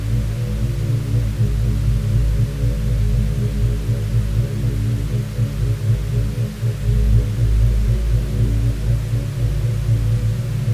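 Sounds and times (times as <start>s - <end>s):
binaural beats deep layered drone of low tones: 0.0s - 10.7s
faint even white noise hiss: 0.0s - 10.7s.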